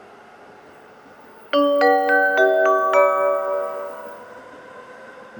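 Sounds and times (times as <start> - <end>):
local train station ambience in Amagasaki: 1.6 - 4.6.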